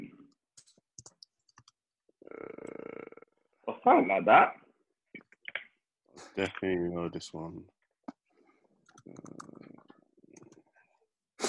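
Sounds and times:
typing on a keyboard: 0:01.0 - 0:01.8
speech: 0:03.9 - 0:04.6, 0:06.4 - 0:07.8.

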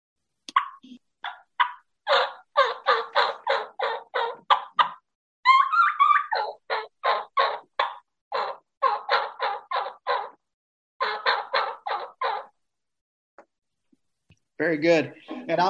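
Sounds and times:
imitated wild turkey kee-kee run locator call: 0:00.5 - 0:10.4, 0:11.0 - 0:12.6
speech: 0:14.6 - 0:15.6.

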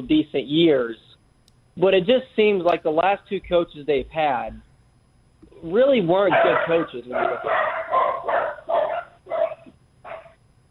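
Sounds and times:
speech: 0:00.0 - 0:01.1, 0:01.8 - 0:04.7, 0:05.6 - 0:08.4
long-haired miniature dachshunds barking: 0:06.3 - 0:10.4.

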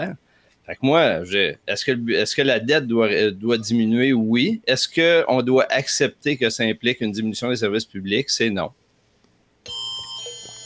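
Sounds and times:
speech: 0:00.0 - 0:08.8
loud piercing multi-pitched electronic alert tone: 0:09.7 - 0:10.6.

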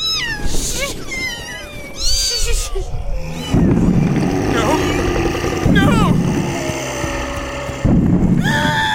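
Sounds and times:
kittens meowing in high overlapping cries: 0:00.0 - 0:06.2
low rumbling background: 0:02.2 - 0:08.8.

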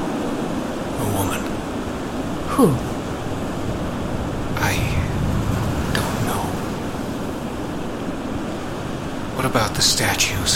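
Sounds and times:
ocean surf waves breaking: 0:00.0 - 0:10.5
speech: 0:01.0 - 0:01.6, 0:02.6 - 0:02.9, 0:09.5 - 0:10.5.

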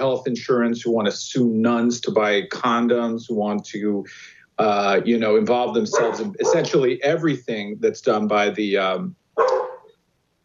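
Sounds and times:
speech: 0:00.1 - 0:09.5
sharp loud dog bark: 0:05.9 - 0:06.8, 0:09.4 - 0:09.9.

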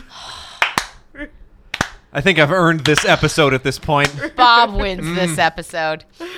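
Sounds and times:
sharp slow hand claps: 0:00.6 - 0:01.0, 0:01.7 - 0:02.1, 0:02.8 - 0:04.3
speech: 0:02.1 - 0:06.3.

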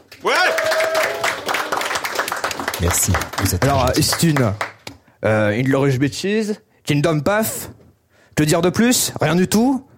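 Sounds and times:
crowd applauding a guest: 0:00.1 - 0:04.9
speech: 0:00.2 - 0:00.5, 0:02.8 - 0:07.8, 0:08.4 - 0:09.9
faint cheering: 0:00.2 - 0:01.9.

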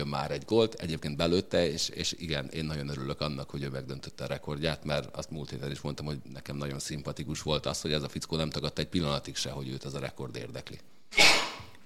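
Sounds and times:
speech: 0:00.1 - 0:11.4
sneeze: 0:11.1 - 0:11.8.

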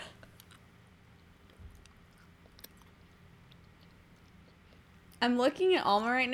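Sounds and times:
chewing rock-hard candy: 0:01.2 - 0:05.2
speech: 0:05.2 - 0:06.3.

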